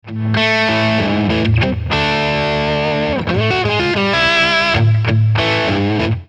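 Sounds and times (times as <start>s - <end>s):
overdriven guitar through an amplifier: 0.0s - 6.2s.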